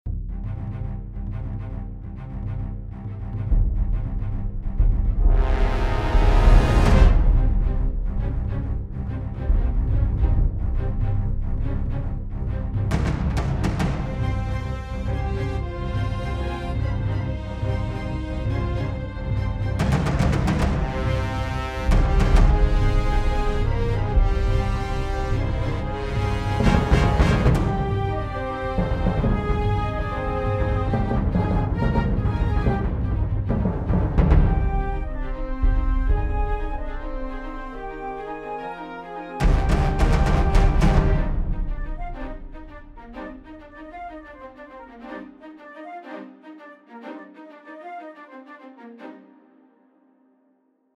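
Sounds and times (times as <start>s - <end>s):
epic music: 0.1s - 48.2s
drums: 3.4s - 12.0s, 12.6s - 15.5s, 19.6s - 37.9s, 39.4s - 43.1s.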